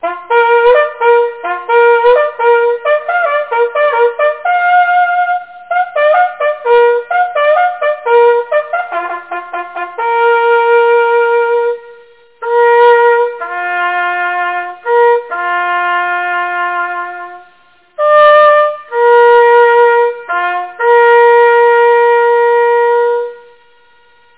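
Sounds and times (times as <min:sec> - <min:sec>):
hunting horn: 0:00.0 - 0:24.3.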